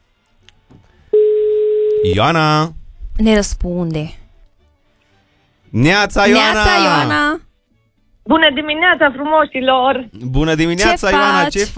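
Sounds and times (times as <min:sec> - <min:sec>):
telephone ringback tone: 0:01.1 - 0:02.1
speech: 0:02.0 - 0:04.2, 0:05.7 - 0:07.4, 0:08.3 - 0:11.7.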